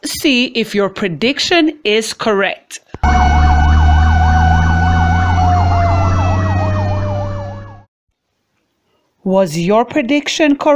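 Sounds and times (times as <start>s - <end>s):
speech: 0.2s - 3.4s, 9.2s - 10.7s
fire truck siren wailing on the way to a fire: 3.0s - 7.9s.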